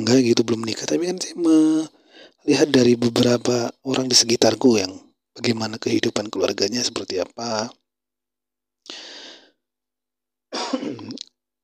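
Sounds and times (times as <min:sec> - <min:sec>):
speech: 0:00.0 - 0:07.8
person coughing: 0:10.5 - 0:11.2.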